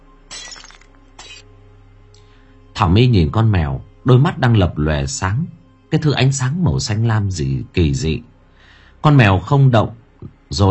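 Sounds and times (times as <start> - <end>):
glass cup slipping from a hand and shattering: 0.3 - 1.4
speech: 2.8 - 8.3, 9.0 - 10.6.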